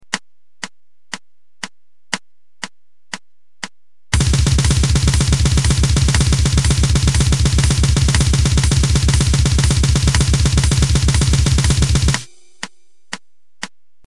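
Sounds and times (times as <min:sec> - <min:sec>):
halftime blast drum beat: 0:04.2 - 0:12.4.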